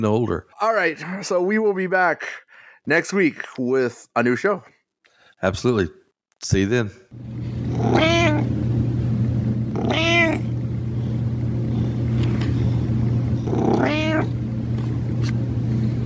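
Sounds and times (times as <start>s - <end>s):
speech: 0.0s - 4.8s, 5.4s - 8.6s, 9.9s - 10.5s
steady low hum: 7.1s - 16.0s
cat meowing: 7.7s - 8.5s, 9.7s - 10.5s, 13.4s - 14.4s.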